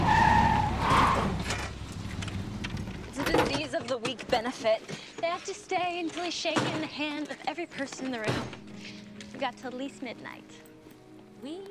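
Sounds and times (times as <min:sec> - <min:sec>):
car engine and tyre noise driving up a steep hill and parking: 0:00.0 - 0:03.3
speech: 0:04.4 - 0:08.6, 0:09.4 - 0:10.6, 0:11.4 - 0:11.7.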